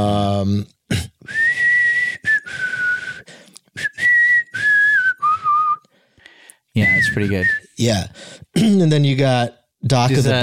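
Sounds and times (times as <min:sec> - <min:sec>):
speech: 0:00.0 - 0:01.1, 0:07.2 - 0:10.4
person whistling a slow melody: 0:01.3 - 0:05.9, 0:06.8 - 0:07.8.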